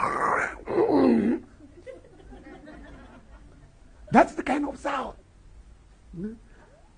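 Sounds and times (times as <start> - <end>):
person imitating spitting with a throaty hawking noise: 0.0 - 1.5
laughter: 1.6 - 3.9
speech: 6.2 - 6.5.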